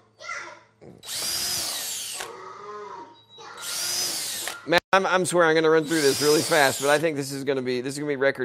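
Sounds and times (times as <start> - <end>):
power drill boring holes in a workshop aboard a tour bus: 1.0 - 2.4, 3.6 - 4.8, 5.8 - 7.2
speech: 4.7 - 8.4.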